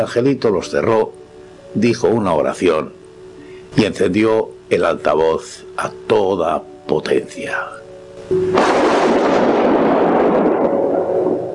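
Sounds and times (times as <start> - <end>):
speech: 0.0 - 3.0, 3.7 - 9.4
low steady hum: 0.0 - 11.5
massive explosion with rumbling debris: 8.5 - 11.5.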